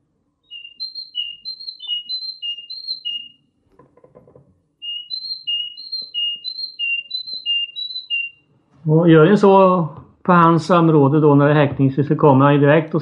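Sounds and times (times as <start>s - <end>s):
human whistling imitation of great tit song: 0.4s - 3.5s, 4.8s - 8.5s
speech: 8.9s - 12.9s.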